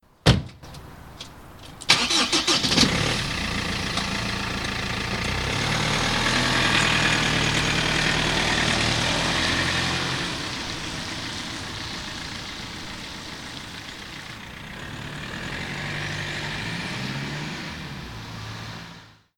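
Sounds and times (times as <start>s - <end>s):
car: 1.7s - 19.3s.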